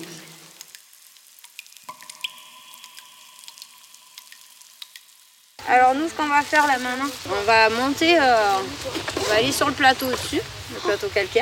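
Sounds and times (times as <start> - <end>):
water dripping in a reverberant cave: 0.0 - 11.3
sharp droplet plinks: 1.8 - 5.0
speech: 5.7 - 11.3.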